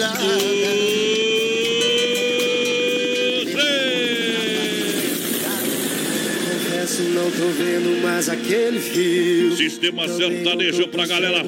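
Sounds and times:
speech: 0:00.0 - 0:00.5, 0:07.3 - 0:11.4
helicopter with whining engine droning: 0:01.2 - 0:09.5.

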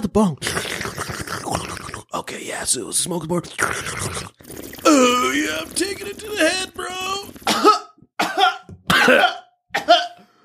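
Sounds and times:
speech: 0:00.0 - 0:00.6, 0:02.3 - 0:07.8, 0:09.0 - 0:09.4
harsh raspy theatrical coughs performed for a skit: 0:07.4 - 0:10.2.

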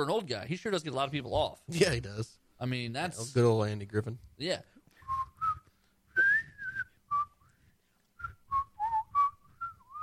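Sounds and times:
speech: 0:00.0 - 0:04.8
person whistling a tune: 0:05.0 - 0:07.6, 0:08.2 - 0:10.0.

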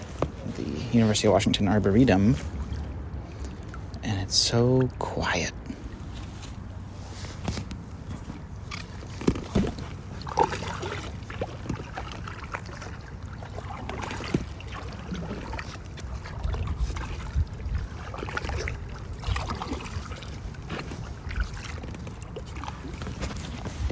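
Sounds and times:
low rumble of canal water: 0:00.0 - 0:23.9
speech: 0:00.6 - 0:02.6, 0:04.3 - 0:05.6
faint splashes or knocks: 0:08.7 - 0:23.9.

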